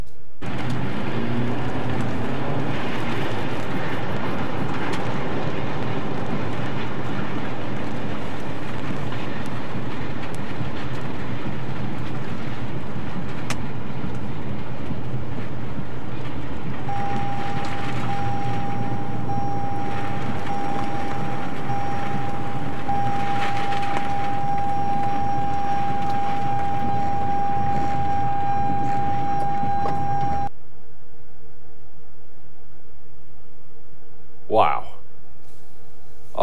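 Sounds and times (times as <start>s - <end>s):
low rumbling: 0.1s - 36.4s
violent tornado winds roaring around a moving truck: 0.3s - 36.4s
thin steady whistle-like tone: 16.9s - 30.5s.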